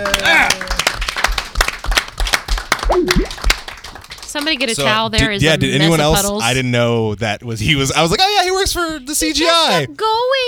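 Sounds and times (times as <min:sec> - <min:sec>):
people shouting cheers: 0:00.0 - 0:01.1
crowd clapping: 0:00.0 - 0:04.8
speech: 0:04.4 - 0:10.4.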